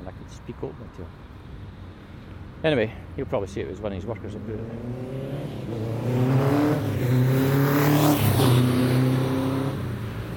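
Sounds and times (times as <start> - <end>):
speech: 0.1 - 1.4, 2.6 - 8.9
motorbike engine revving past: 4.7 - 9.9.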